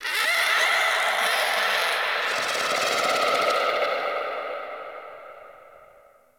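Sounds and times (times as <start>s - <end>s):
cave creature ambience on a Venus landscape: 0.0s - 6.1s.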